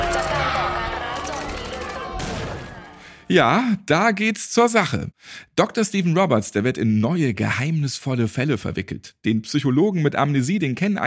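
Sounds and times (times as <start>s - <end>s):
people shouting: 0.0s - 3.0s
sharp loud blast: 0.0s - 3.3s
gunshots: 1.2s - 3.1s
speech: 3.3s - 11.0s.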